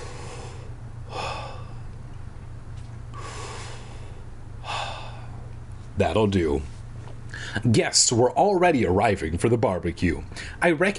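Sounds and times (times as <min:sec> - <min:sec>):
deep breaths taken during a short break: 0:00.0 - 0:02.0, 0:03.1 - 0:05.5, 0:07.3 - 0:07.6
steady low hum: 0:00.0 - 0:10.6
speech: 0:06.0 - 0:06.7, 0:07.6 - 0:10.9.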